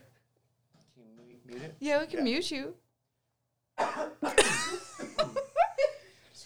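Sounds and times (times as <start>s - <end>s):
speech: 1.0s - 2.8s
person coughing: 3.8s - 5.3s
laughter: 4.0s - 6.4s.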